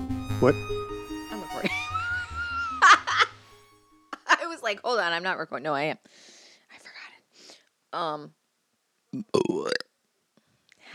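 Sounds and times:
speech: 0:00.4 - 0:00.8, 0:04.7 - 0:06.3, 0:07.9 - 0:08.4, 0:09.1 - 0:09.9
laughter: 0:01.6 - 0:03.4
burp: 0:09.1 - 0:10.0
long rough belching noise sliding in pitch: 0:09.2 - 0:09.9.

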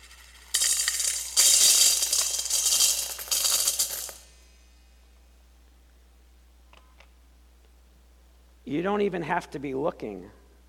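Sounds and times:
coins clattering into a big metal offering container in a church: 0:00.0 - 0:04.3
speech: 0:08.7 - 0:10.4.

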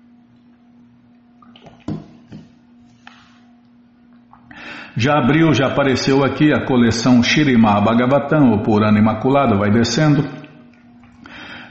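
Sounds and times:
steady low electrical hum: 0:00.0 - 0:11.6
person drinking water: 0:01.4 - 0:02.4, 0:04.1 - 0:04.6, 0:10.4 - 0:11.4
speech: 0:05.0 - 0:10.4.

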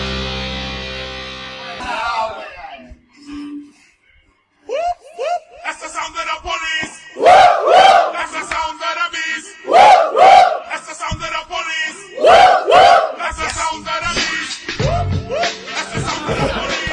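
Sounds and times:
group of people shouting together in chant-like bursts: 0:01.7 - 0:02.8, 0:07.2 - 0:08.3, 0:09.7 - 0:10.7, 0:12.2 - 0:13.4
laughter: 0:15.3 - 0:16.9.

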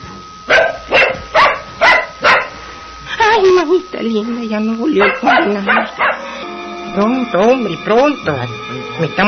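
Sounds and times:
dog barking loudly: 0:00.5 - 0:02.6, 0:05.0 - 0:06.3
speech: 0:03.6 - 0:06.0, 0:06.9 - 0:09.2.

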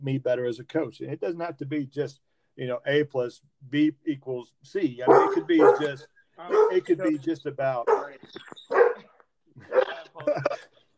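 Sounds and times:
speech: 0:00.0 - 0:08.9
dog barking excitedly: 0:05.0 - 0:06.9, 0:07.9 - 0:09.1
laughter: 0:09.6 - 0:10.8.

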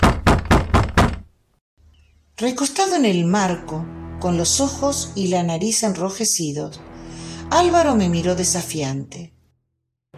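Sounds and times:
knocking on a door: 0:00.0 - 0:01.3
speech: 0:02.4 - 0:06.9, 0:07.5 - 0:09.4.

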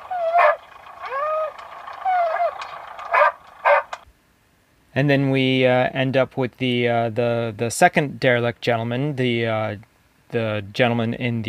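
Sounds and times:
dog whimpering with high wavering whines: 0:00.0 - 0:03.9
dog barking short and sharp: 0:00.2 - 0:00.6, 0:02.1 - 0:04.0
speech: 0:05.0 - 0:11.4.

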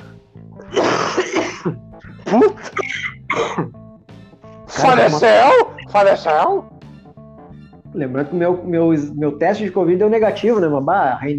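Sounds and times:
man clearing throat: 0:00.6 - 0:03.8
man coughing: 0:00.6 - 0:03.8
speech: 0:01.2 - 0:03.7, 0:04.8 - 0:06.7, 0:07.9 - 0:11.3.

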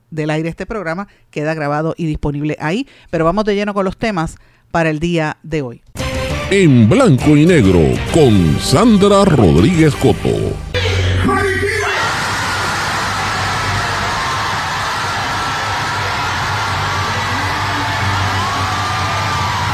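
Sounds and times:
speech: 0:00.1 - 0:10.7
large crowd yelling, whooping and cheering in celebration: 0:07.4 - 0:19.7.

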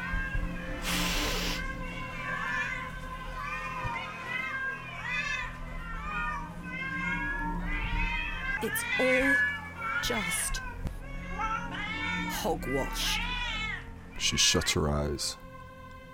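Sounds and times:
many cats meowing: 0:00.0 - 0:14.6
hissing burst of noise: 0:00.8 - 0:01.6
speech: 0:08.6 - 0:10.7, 0:12.4 - 0:13.3, 0:14.2 - 0:15.4.

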